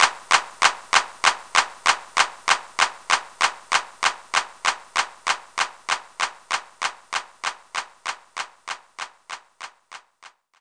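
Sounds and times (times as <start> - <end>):
hand clap: 0.0 - 10.6.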